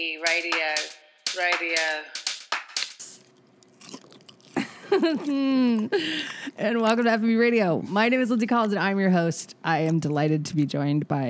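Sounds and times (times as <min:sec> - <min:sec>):
speech: 0:00.0 - 0:02.2, 0:04.9 - 0:11.2
man crunching while eating: 0:03.0 - 0:07.2.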